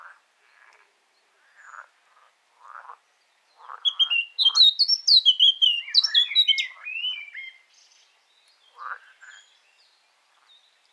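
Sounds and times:
Eurasian blackcap Sylvia atricapilla singing: 3.9 - 7.5.

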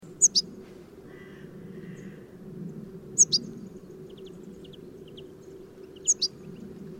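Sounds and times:
low steady hum: 0.0 - 6.9
European goldfinch calls, Carduelis carduelis: 0.2 - 0.5, 3.2 - 6.9.

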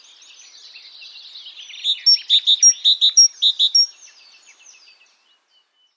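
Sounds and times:
faint great tit twitter: 0.0 - 5.9
Great tit (Parus major) bright chipping calls with thin high whistles: 1.6 - 3.9.

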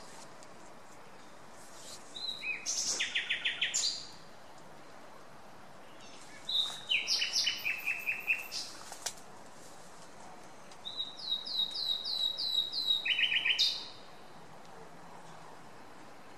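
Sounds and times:
common nightingale Luscinia megarhynchos singing: 1.8 - 4.6, 5.9 - 8.9, 10.8 - 14.4.

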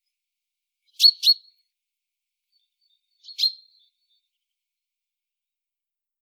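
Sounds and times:
common chaffinch Fringilla coelebs giving sharp chip calls: 1.0 - 1.5, 3.2 - 3.6.

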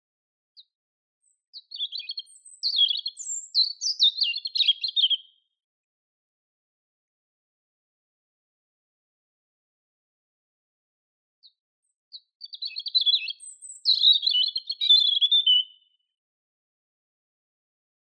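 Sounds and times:
European robin singing a jangling warble: 0.6 - 5.4, 12.1 - 16.0.

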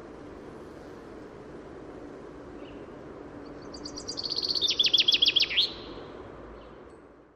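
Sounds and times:
common chaffinch singing: 3.5 - 6.1.

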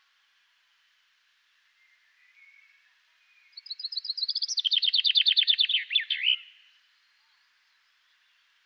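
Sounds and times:
common chaffinch Fringilla coelebs song: 3.5 - 6.6.

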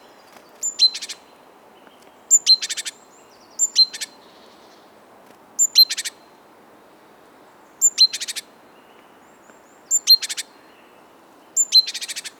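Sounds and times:
faint background noise: 0.0 - 12.3
great tit Parus major giving sharp calls with buzzy chatter: 0.6 - 1.3, 2.3 - 4.8, 5.6 - 6.2, 7.8 - 8.5, 9.9 - 10.9, 11.6 - 12.3.

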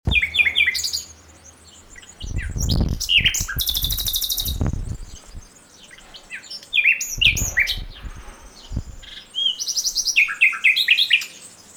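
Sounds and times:
low dull thumps or rumbles: 0.1 - 0.9, 1.8 - 5.5, 7.1 - 9.2
common nightingale Luscinia megarhynchos singing: 0.1 - 11.7.

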